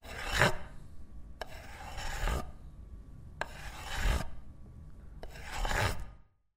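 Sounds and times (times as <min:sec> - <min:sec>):
knife sawing through a pie on a plate: 0:00.0 - 0:00.7, 0:01.4 - 0:02.6, 0:03.4 - 0:04.4, 0:05.2 - 0:06.2.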